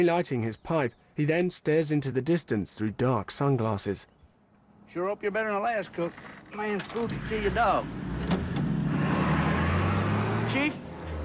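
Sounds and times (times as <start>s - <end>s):
speech: 0.0s - 4.1s, 4.9s - 8.1s, 10.5s - 10.8s
car engine driving off: 6.3s - 11.2s.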